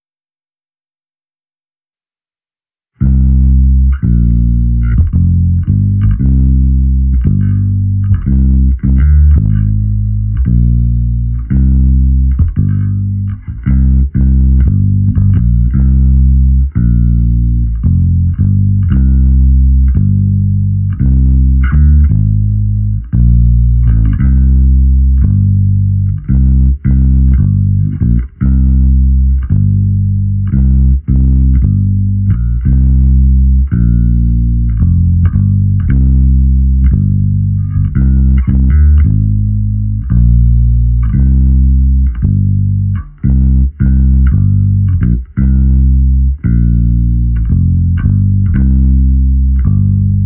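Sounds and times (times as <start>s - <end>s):
bass line at 85 BPM: 3.0s - 50.2s.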